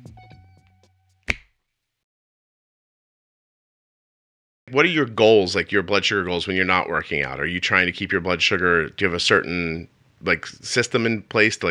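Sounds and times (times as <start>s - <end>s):
crisp sharp finger snap: 0.0s - 1.6s
speech: 4.7s - 11.7s.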